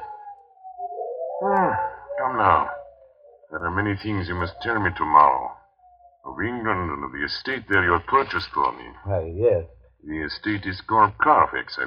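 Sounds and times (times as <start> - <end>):
wolves howling: 0.0 - 5.8
speech: 1.4 - 2.8, 3.5 - 5.6, 6.2 - 11.8.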